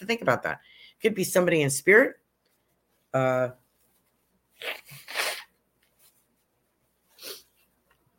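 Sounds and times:
speech: 0.1 - 2.2, 3.1 - 3.6, 4.6 - 5.2
person sneezing: 4.6 - 5.5.

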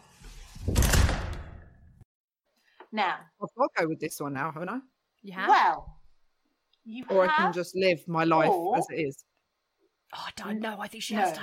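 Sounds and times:
door slamming shut: 0.6 - 1.7
speech: 2.9 - 6.0, 6.8 - 9.3, 10.1 - 11.4.

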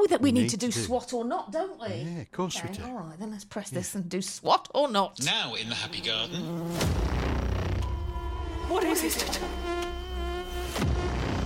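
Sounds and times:
speech: 0.0 - 7.2, 8.7 - 10.0
droning insect buzzing: 5.9 - 11.4.

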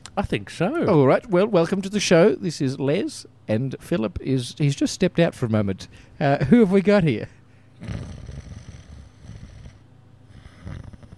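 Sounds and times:
speech: 0.2 - 8.2
exaggerated comic snoring noise made by a voice: 7.8 - 11.1.

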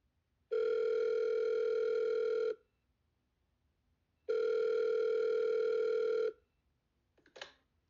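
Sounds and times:
telephone ringing: 0.5 - 2.6, 4.3 - 6.4.

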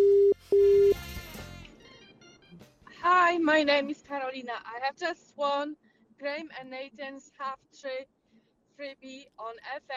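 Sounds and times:
outgoing phone call ringing tone from a private number: 0.0 - 1.2
speech: 3.4 - 8.2, 8.8 - 9.9.

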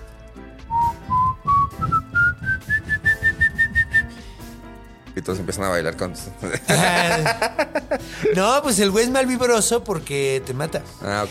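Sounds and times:
person whistling an eerie imitation of a horror legend whistle: 0.7 - 4.4
speech: 5.2 - 11.2
laughter: 6.4 - 8.4.

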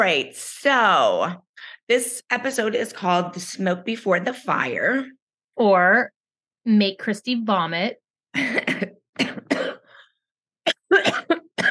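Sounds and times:
speech: 0.0 - 9.8
person coughing: 8.4 - 10.0, 10.7 - 11.7.

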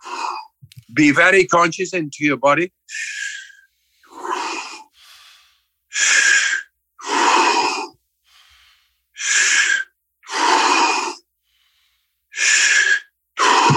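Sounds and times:
speech: 0.9 - 3.2
standing person breathing deeply as a breathing exercise: 2.9 - 13.7.

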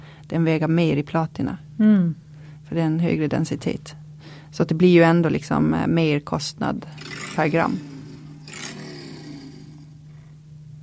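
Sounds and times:
speech: 0.3 - 7.9
mobile phone ringtone with growling roar-like sound over low hum: 7.0 - 10.0.

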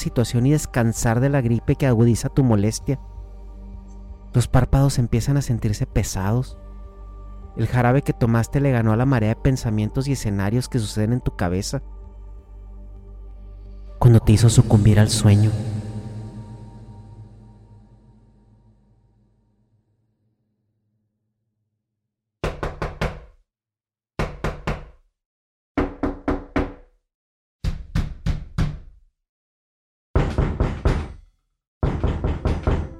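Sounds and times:
speech: 0.0 - 3.1, 4.4 - 6.6, 7.6 - 12.0, 14.0 - 15.8
low drone: 0.0 - 19.7
knocking on a door: 22.4 - 23.3, 24.2 - 25.0, 25.8 - 26.9, 27.6 - 29.0, 30.2 - 31.2, 31.8 - 32.9.

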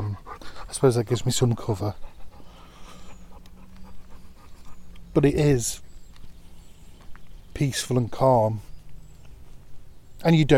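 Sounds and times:
dog panting in a children's play park: 0.0 - 5.2
low constant hum: 0.0 - 10.5
speech: 0.7 - 2.1, 5.2 - 5.8, 7.6 - 8.7, 10.2 - 10.5.

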